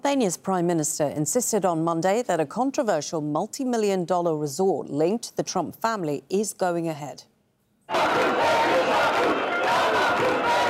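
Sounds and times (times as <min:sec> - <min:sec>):
speech: 0:00.0 - 0:07.3
large protest crowd shouting and chanting against a planned resort project: 0:07.9 - 0:10.6.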